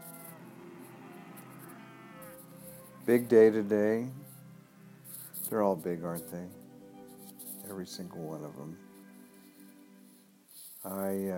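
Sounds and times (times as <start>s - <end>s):
cows mooing: 0.0s - 2.7s
speech: 3.1s - 4.2s, 5.5s - 6.6s, 7.7s - 8.8s, 10.8s - 11.3s.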